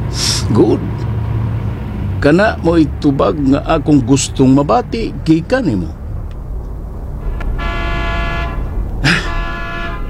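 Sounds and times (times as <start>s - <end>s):
steady traffic engine noise: 0.0s - 10.0s
speech: 0.5s - 1.0s, 2.2s - 6.0s
car horns honking in traffic: 2.1s - 10.0s.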